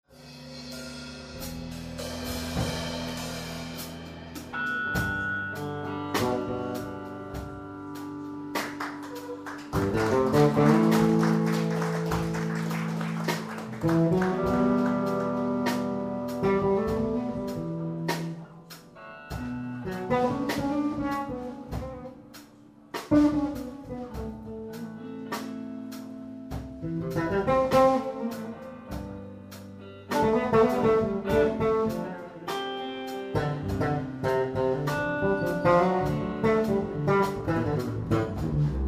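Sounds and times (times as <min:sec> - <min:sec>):
bass solo: 0:00.4 - 0:22.4, 0:23.1 - 0:38.8.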